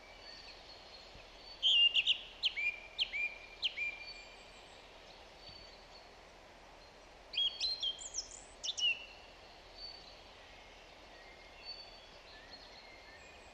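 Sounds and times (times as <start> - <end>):
song thrush Turdus philomelos singing: 0.0 - 6.2, 6.8 - 13.5.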